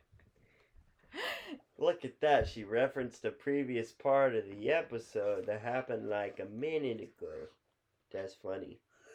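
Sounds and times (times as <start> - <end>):
woman letting out a drawn-out voiced gasp: 1.1 - 1.6
speech: 1.8 - 8.8.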